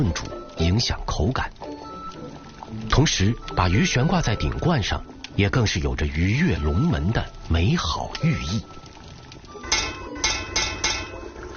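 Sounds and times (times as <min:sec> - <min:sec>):
speech: 0:00.0 - 0:01.6, 0:02.7 - 0:08.8
sharp metallic taps on the rim of a cooking pot: 0:09.7 - 0:11.2.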